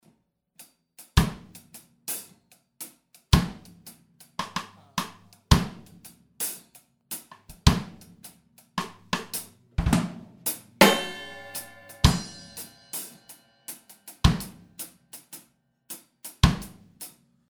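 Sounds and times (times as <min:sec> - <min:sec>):
reggae drum loop: 0:01.2 - 0:01.7, 0:03.4 - 0:03.8, 0:04.4 - 0:08.2, 0:08.8 - 0:15.4, 0:16.3 - 0:16.8.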